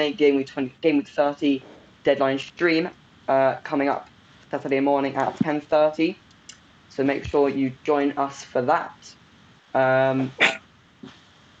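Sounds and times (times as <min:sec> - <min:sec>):
speech: 0:00.0 - 0:06.2, 0:06.9 - 0:11.2
faint breathy sound: 0:01.6 - 0:02.0
sneeze: 0:10.4 - 0:10.6.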